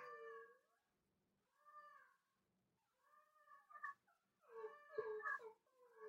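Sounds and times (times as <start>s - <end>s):
two dogs howling and whining in high-pitched cries: 0.0s - 0.6s, 4.5s - 6.0s.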